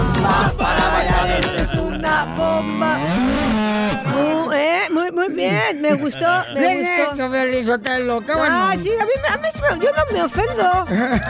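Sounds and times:
laughter: 0:00.3 - 0:07.2, 0:09.2 - 0:11.2
cow mooing: 0:01.9 - 0:04.2
speech: 0:05.3 - 0:11.2.

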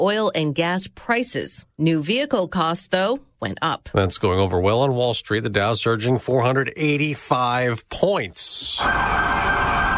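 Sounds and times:
speech: 0:00.0 - 0:09.9
police sirens of a motorcade arriving in New York City: 0:08.7 - 0:09.9.

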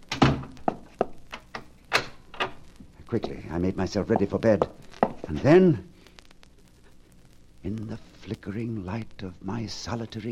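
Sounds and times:
heavy door to a room thudding shut: 0:00.1 - 0:00.5
speech: 0:03.1 - 0:05.9, 0:07.6 - 0:10.2.

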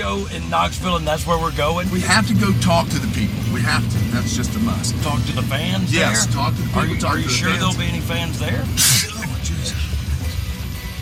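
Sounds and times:
low rumble: 0:00.0 - 0:10.9
speech: 0:00.1 - 0:09.8
person sneezing onto a steering wheel: 0:08.8 - 0:09.3
laughter: 0:08.8 - 0:09.9.

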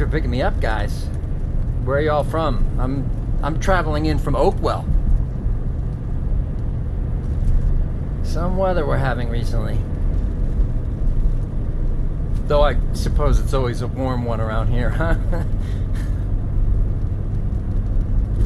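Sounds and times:
car interior road rumble: 0:00.0 - 0:18.4
speech: 0:00.1 - 0:01.2, 0:01.8 - 0:05.0, 0:08.3 - 0:10.0, 0:12.5 - 0:16.1
man laughing: 0:14.8 - 0:16.2.

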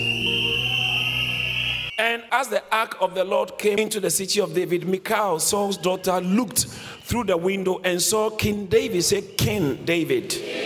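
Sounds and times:
loud shrill whistle blast: 0:00.0 - 0:02.3
speech: 0:02.1 - 0:10.6.

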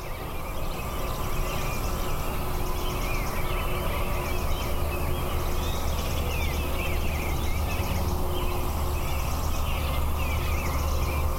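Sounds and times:
distant interstate highway traffic at dawn: 0:00.0 - 0:11.3.

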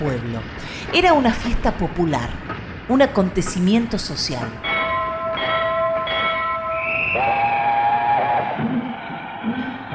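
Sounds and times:
speech: 0:00.0 - 0:04.7
rail noise: 0:00.0 - 0:09.9
train rumbling past: 0:00.0 - 0:09.9
train horn long sustained blasts: 0:04.6 - 0:08.6.

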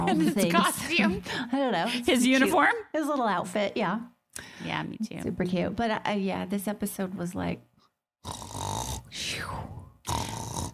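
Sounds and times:
speech: 0:00.2 - 0:10.2
person snoring: 0:08.2 - 0:10.7.

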